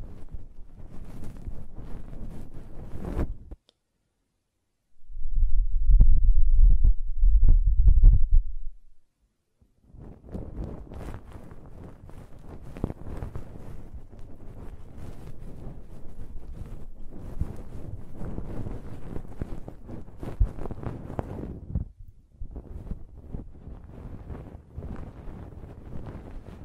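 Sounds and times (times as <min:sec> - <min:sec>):
rustling scrapes and rubbing of ear cleaning: 0:00.0 - 0:03.5, 0:10.1 - 0:21.7, 0:22.5 - 0:26.6
loud low blowing rumble: 0:00.0 - 0:03.6, 0:05.0 - 0:09.0, 0:09.9 - 0:26.6.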